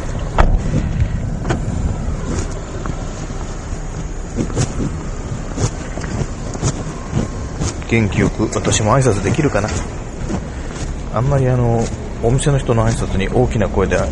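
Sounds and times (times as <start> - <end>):
steady low vehicle rumble: 0.0 - 14.0
sharp clicks and thumps of someone climbing out of a car: 0.1 - 8.9
speech: 7.9 - 10.0, 11.2 - 14.0.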